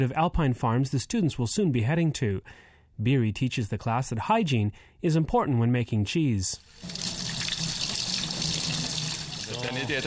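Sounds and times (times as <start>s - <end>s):
speech: 0.0s - 7.1s, 9.6s - 10.0s
tap water running into a sink: 6.6s - 10.0s.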